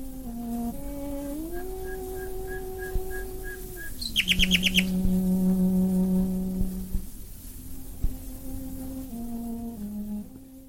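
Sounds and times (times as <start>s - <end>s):
hiss and crackle of an old scratchy 1920s recording: 0.0s - 10.6s
slow sustained string melody: 0.0s - 10.6s
nightingales singing in chirps and trills: 1.5s - 5.1s.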